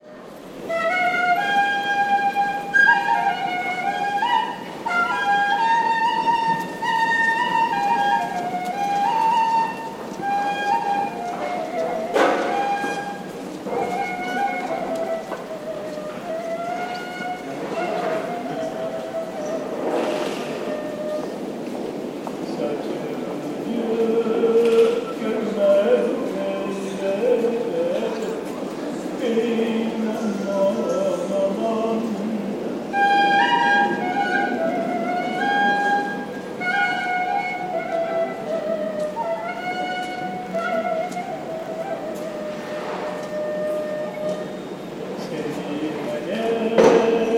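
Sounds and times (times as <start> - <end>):
ney flute playing in Şişli Mecidiyeköy: 0.0 - 47.3
voice in Şişli Mecidiyeköy: 16.9 - 21.3, 22.3 - 32.6, 45.1 - 47.3.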